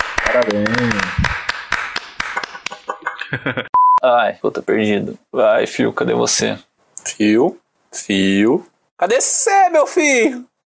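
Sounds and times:
hand clapping: 0.0s - 3.4s
speech: 0.4s - 1.4s, 3.3s - 10.6s
laughter: 2.4s - 3.7s.

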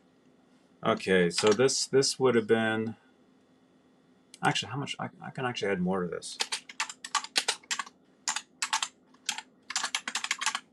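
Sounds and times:
faint low hum: 0.0s - 10.7s
speech: 0.8s - 3.0s, 4.4s - 6.5s
typing on a computer keyboard: 1.4s - 1.6s, 6.4s - 10.7s.

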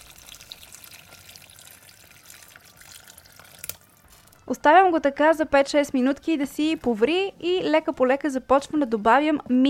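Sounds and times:
cup of bouillon broth pouring over stew in a pot: 0.0s - 4.4s
speech: 4.5s - 9.6s.

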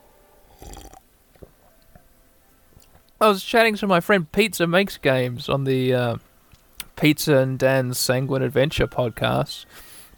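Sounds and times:
slurping sip of lime cordial from a glass: 0.5s - 1.0s
speech: 3.2s - 6.3s, 7.0s - 9.9s.

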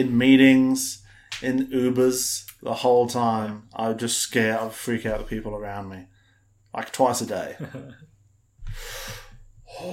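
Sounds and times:
speech: 0.0s - 6.1s, 6.8s - 8.1s, 8.7s - 9.9s
person making exaggerated heavy breathing and gasping: 8.6s - 9.9s.

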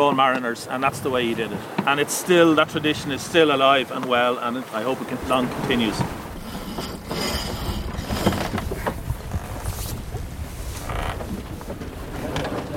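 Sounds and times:
speech: 0.0s - 6.2s
wind roaring across a boat at sea: 0.0s - 12.7s
creaks of rigging or hull: 3.8s - 12.7s.

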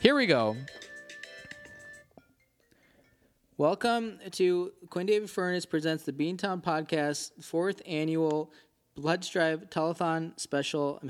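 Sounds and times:
speech: 0.0s - 0.9s, 3.6s - 11.0s
phone ringtone for an incoming call: 0.0s - 3.4s.

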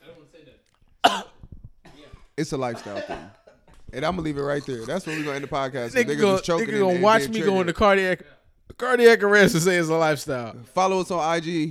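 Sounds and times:
person coughing: 1.0s - 3.4s
speech: 2.4s - 11.6s.

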